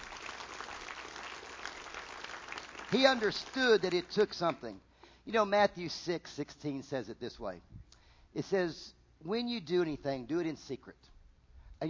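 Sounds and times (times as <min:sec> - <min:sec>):
large crowd applauding: 0:00.0 - 0:04.6
speech: 0:02.9 - 0:07.8, 0:08.4 - 0:11.1.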